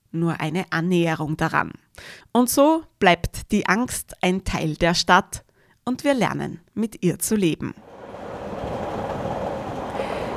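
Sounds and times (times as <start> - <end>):
speech: 0.1 - 7.9
train rumbling on rails: 7.8 - 10.3.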